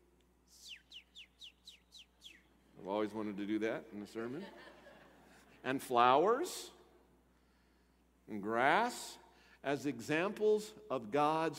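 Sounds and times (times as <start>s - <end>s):
bird chirping with bright downward-sweeping notes: 0.5s - 3.3s
speech: 2.8s - 4.7s, 5.6s - 6.8s, 8.3s - 11.5s
laughter: 4.2s - 5.6s.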